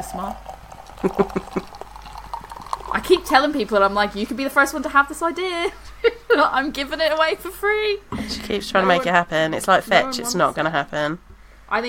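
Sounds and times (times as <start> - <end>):
speech: 0.0 - 1.8, 2.9 - 11.8
special bitter beer glugging into a glass: 0.0 - 4.4.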